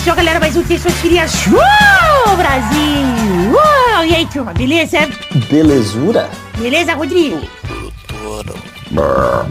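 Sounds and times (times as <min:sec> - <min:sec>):
speech: 0:00.2 - 0:07.6, 0:08.3 - 0:09.4
loud drawn-out throaty belch: 0:07.7 - 0:09.4.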